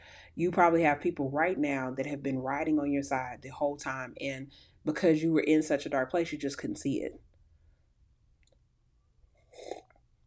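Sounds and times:
speech: 0.4 - 7.3
soft slurp of coffee: 9.4 - 10.0.

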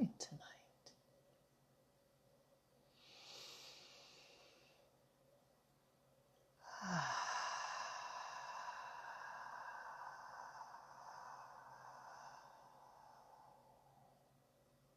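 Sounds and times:
slow relaxed breathing: 2.8 - 5.1, 6.6 - 14.9.

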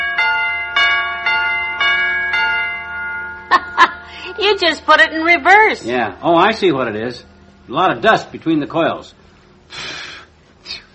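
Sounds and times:
electric doorbell chime hammer striking metal chime pipes: 0.0 - 4.9
speech: 4.4 - 10.0.

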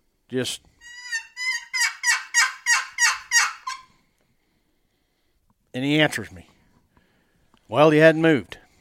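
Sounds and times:
speech: 0.3 - 1.0, 5.8 - 6.5, 7.7 - 8.6
turkey yelps from a hunter's turkey call: 0.8 - 3.9.

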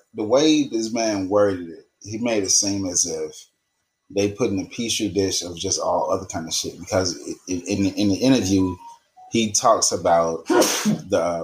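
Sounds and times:
speech: 0.1 - 3.5, 4.1 - 11.4
sneeze: 10.5 - 11.2.

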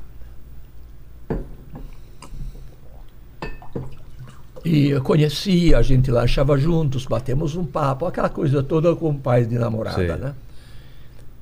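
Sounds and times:
person sipping water from a glass: 1.8 - 4.6
gulps and swallows: 2.2 - 3.2
glass clinking: 3.4 - 4.0
speech: 4.6 - 10.4.

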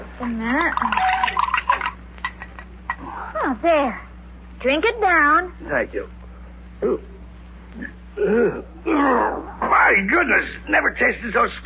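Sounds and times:
speech: 0.2 - 1.5, 3.4 - 6.2, 6.8 - 7.1, 7.8 - 11.6
medicine poured into a glass of water: 0.8 - 2.0
voice murmuring: 7.8 - 9.7.

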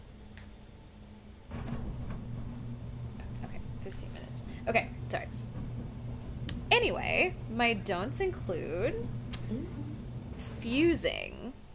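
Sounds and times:
garage door motor humming and rattling: 1.5 - 11.7
speech: 4.7 - 5.4, 6.8 - 9.8, 10.6 - 11.4.

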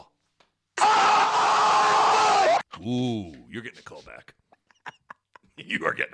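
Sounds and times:
man performing a horror-movie scream: 0.8 - 2.6
speech: 2.8 - 4.4, 5.6 - 6.1.

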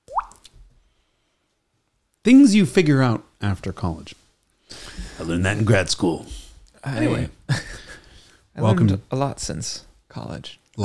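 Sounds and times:
water drip imitated with the mouth: 0.0 - 0.6
speech: 2.3 - 4.2, 5.2 - 7.7, 8.6 - 10.8.

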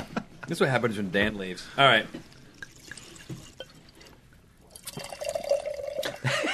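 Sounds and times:
speech: 0.5 - 2.3
wine poured into a mason jar: 2.3 - 6.2.

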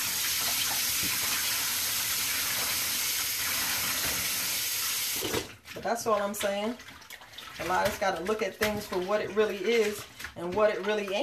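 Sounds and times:
tap water splashing into a sink: 0.0 - 11.2
speech: 5.8 - 6.9, 7.6 - 11.2.

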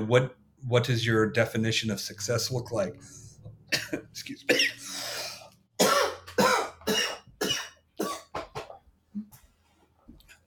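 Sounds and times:
speech: 0.0 - 5.2
sick person coughing in a harsh fit: 3.7 - 8.8
breaths: 4.8 - 5.6.

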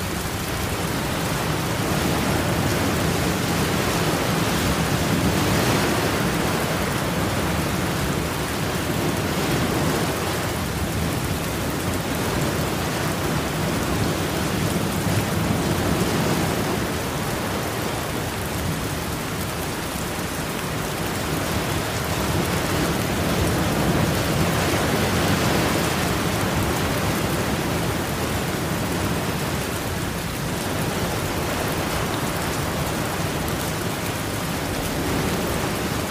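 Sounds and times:
low rumble of surf: 0.0 - 36.0
rain falling over ocean waves: 0.0 - 36.0.

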